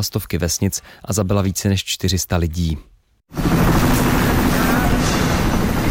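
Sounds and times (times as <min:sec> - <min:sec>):
speech: 0:00.0 - 0:03.4
military helicopter rotor beating while evacuating flood victims in Nepal: 0:03.3 - 0:05.9.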